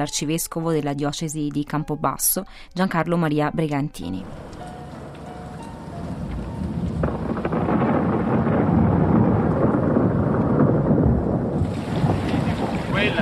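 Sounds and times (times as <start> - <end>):
speech: 0.0 - 4.7
heavy rain pounding: 4.2 - 13.2.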